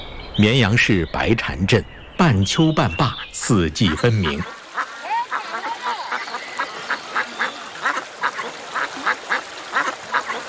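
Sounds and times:
speech: 0.4s - 4.6s
flock of ducks quacking: 2.8s - 10.4s.

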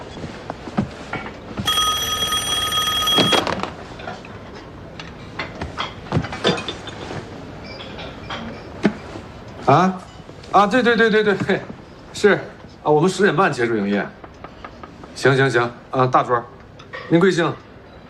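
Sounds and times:
telephone ringing: 1.6s - 3.6s
speech: 9.7s - 14.2s, 15.2s - 17.6s.

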